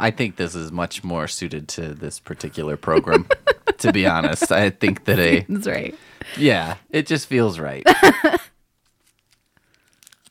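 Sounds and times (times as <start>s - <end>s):
speech: 0.0s - 8.4s
laughter: 2.5s - 6.8s, 7.9s - 8.5s
candy wrapper crinkling: 8.8s - 10.2s
candy being chewed against the microphone: 9.0s - 10.2s.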